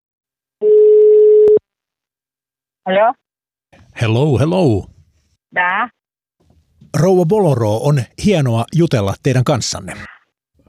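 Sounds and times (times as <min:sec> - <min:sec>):
steady telephone line tone as a phone call connects: 0:00.6 - 0:01.6
speech: 0:02.9 - 0:03.3, 0:04.0 - 0:04.9, 0:05.5 - 0:06.0, 0:06.9 - 0:10.2.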